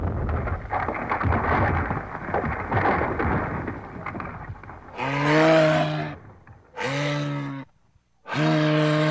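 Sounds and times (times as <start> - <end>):
large ice chunks breaking off a retreating glacier's ice wall: 0.0 - 5.0
loud drawn-out animal bellows: 4.9 - 9.0.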